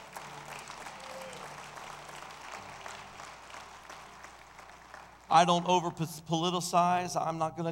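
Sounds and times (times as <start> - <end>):
small group of people clapping during a church service: 0.0 - 5.7
speech: 5.3 - 7.7.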